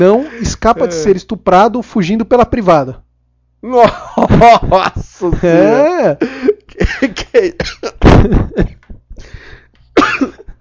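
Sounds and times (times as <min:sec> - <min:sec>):
speech: 0:00.0 - 0:03.0, 0:03.6 - 0:08.7
person coughing at range: 0:07.4 - 0:08.8, 0:10.0 - 0:10.5.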